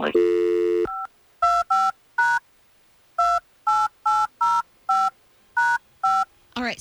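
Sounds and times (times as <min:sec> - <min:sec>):
speech: 0:00.0 - 0:00.6
touch-tone phone keypad dual-tone beeps dialing a number: 0:00.2 - 0:02.4, 0:03.2 - 0:06.3.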